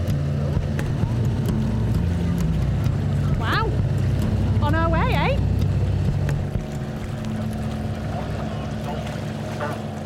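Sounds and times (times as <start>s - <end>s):
boat engine humming on the water: 0.0s - 10.0s
faint rush of wind and water: 0.0s - 10.0s.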